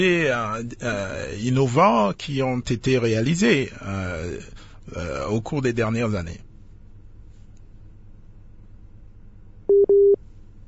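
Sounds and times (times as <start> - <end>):
speech: 0.0 - 6.5
telephone busy signal on a failed phone line: 9.7 - 10.2.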